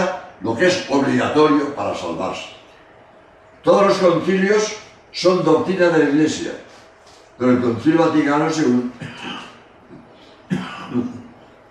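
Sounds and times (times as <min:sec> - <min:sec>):
speech: 0:00.4 - 0:02.6, 0:03.6 - 0:06.7, 0:07.4 - 0:09.4
person coughing: 0:08.9 - 0:11.4.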